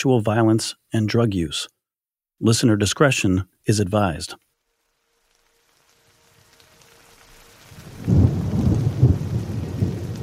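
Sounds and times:
speech: 0.0s - 1.8s, 2.4s - 4.4s
drizzling rain on a mountain: 3.7s - 10.2s.

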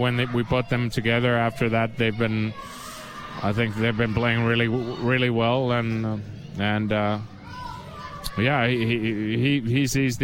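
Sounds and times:
speech: 0.0s - 2.8s, 3.4s - 7.3s, 8.4s - 10.2s
children shouting and yelling: 0.0s - 5.6s, 7.3s - 8.8s
murmured background noise: 0.0s - 10.2s.

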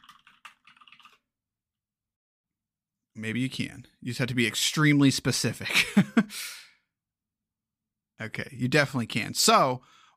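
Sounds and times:
rapid typing on a computer keyboard: 0.0s - 1.2s
speech: 3.2s - 6.6s, 8.2s - 10.1s
laughter: 5.6s - 6.4s.

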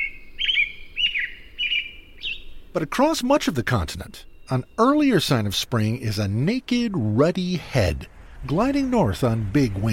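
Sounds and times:
songbird singing in spring: 0.0s - 9.9s
speech: 2.8s - 9.9s.

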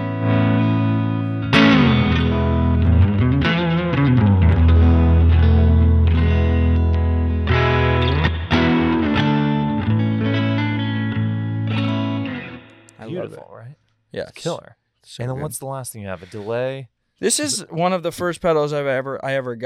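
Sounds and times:
electric guitar played through a Boss Reverb pedal: 0.0s - 13.4s
speech: 14.1s - 19.6s.

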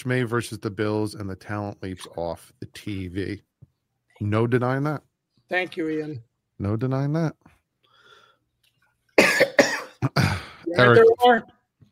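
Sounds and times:
speech: 0.0s - 3.5s, 4.2s - 7.6s, 10.0s - 11.6s
person clearing throat: 9.2s - 10.6s
person coughing: 9.2s - 10.6s.

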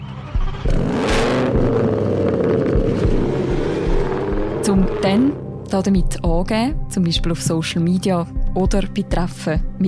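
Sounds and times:
tuned car engine revving through exhaust: 0.0s - 5.7s
speech: 4.7s - 9.8s.

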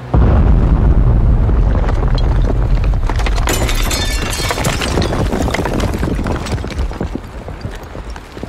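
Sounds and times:
cannon firing a shell at a mansion in Lucknow: 0.0s - 5.8s
explosion blasting apart a sitting room roof with long rumbling roar: 0.0s - 6.4s
crackling shattering debris raining down: 0.1s - 8.4s.

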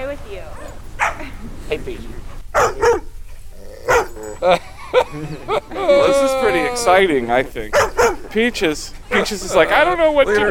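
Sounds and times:
dog barking: 0.5s - 1.3s, 2.5s - 3.2s, 3.8s - 4.4s, 7.7s - 8.4s, 9.1s - 9.4s
laughter: 1.2s - 1.7s, 4.1s - 10.4s
speech: 1.7s - 3.0s, 4.4s - 5.5s, 6.8s - 10.4s.

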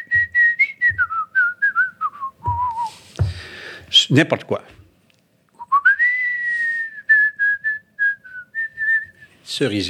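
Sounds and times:
person whistling a melody: 0.0s - 3.0s, 5.6s - 9.3s
speech: 4.1s - 4.8s, 9.6s - 9.8s.

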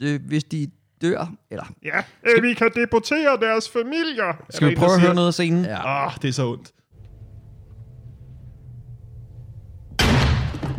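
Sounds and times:
speech: 0.0s - 6.8s
gunshot of a man shooting himself in a film scene: 9.9s - 10.7s.

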